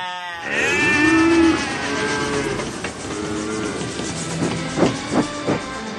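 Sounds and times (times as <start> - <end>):
overlapping lowing and bleating calls: 0.0 - 4.6
cattle mooing: 0.3 - 4.6.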